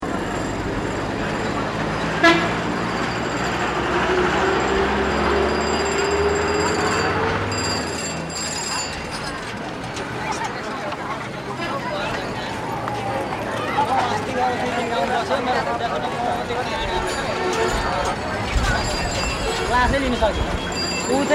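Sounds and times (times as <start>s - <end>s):
rush hour traffic in Nepal: 0.0s - 21.3s.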